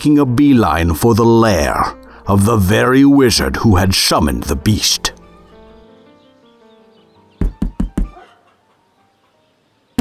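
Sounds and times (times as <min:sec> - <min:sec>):
speech: 0:00.0 - 0:05.2
soft music: 0:00.0 - 0:09.9
knocking on a wooden door: 0:07.4 - 0:08.2.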